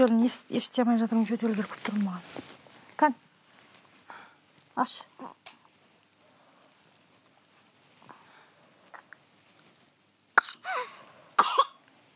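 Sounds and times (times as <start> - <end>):
speech: 0.0 - 3.2, 4.8 - 5.4
harsh coughs: 11.4 - 11.8.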